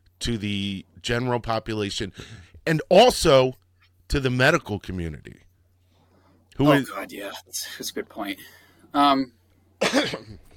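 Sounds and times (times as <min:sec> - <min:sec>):
speech: 0:00.2 - 0:05.5, 0:06.6 - 0:10.5
person coughing: 0:09.8 - 0:10.5.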